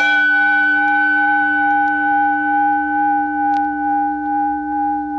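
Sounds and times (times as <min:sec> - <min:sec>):
struck gong ringing with a bell-like tone: 0:00.0 - 0:05.1.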